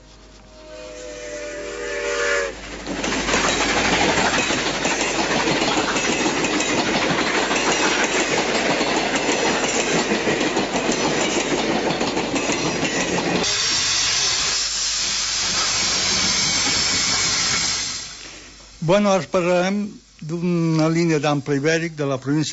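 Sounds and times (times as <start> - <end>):
steam train rushing past at full speed: 0.0 - 22.5
wagon wheels clattering over the rails: 2.8 - 13.4
speech: 18.9 - 22.5.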